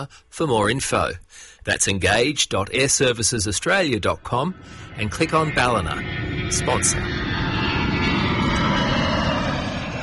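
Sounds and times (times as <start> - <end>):
speech: 0.0 - 7.2
aircraft engine roar overhead: 2.1 - 10.0.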